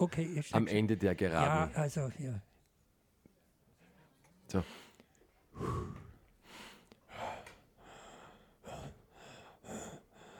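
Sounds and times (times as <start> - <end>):
speech: 0.0 - 2.5, 4.5 - 4.8, 5.6 - 6.0
heavy labored breathing: 4.6 - 10.3.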